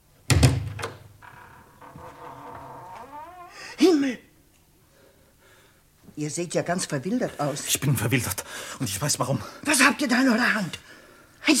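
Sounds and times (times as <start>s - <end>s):
house door being opened: 0.3s - 3.6s
speech: 3.8s - 4.3s, 6.2s - 11.5s.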